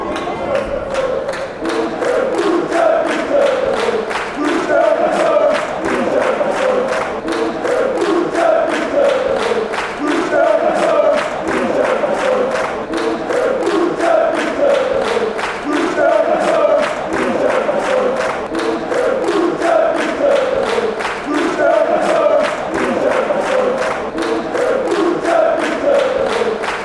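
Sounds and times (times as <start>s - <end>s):
hands clapping: 0.0s - 26.8s
people singing: 0.0s - 26.8s.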